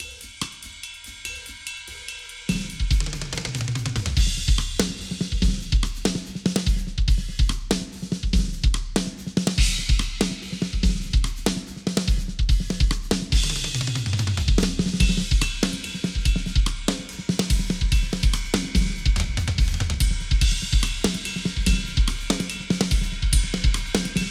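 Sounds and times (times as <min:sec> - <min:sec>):
Yamaha 9000 drum: 0:00.0 - 0:24.2.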